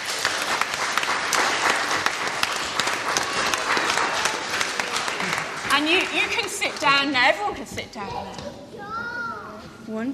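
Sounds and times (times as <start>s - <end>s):
congregation applauding: 0.0s - 7.1s
speech: 5.8s - 8.6s, 9.9s - 10.1s.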